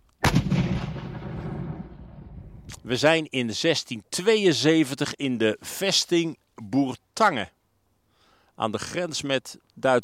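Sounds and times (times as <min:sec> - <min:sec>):
historic cannon fired at a fortress outdoors: 0:00.2 - 0:02.7
speech: 0:02.7 - 0:07.6, 0:08.6 - 0:10.0.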